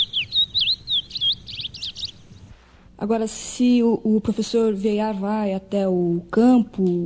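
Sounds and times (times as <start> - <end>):
small bird singing high thin chirps and warbled notes: 0.0 - 2.6
low rumble: 0.0 - 5.4
speech: 3.0 - 7.0.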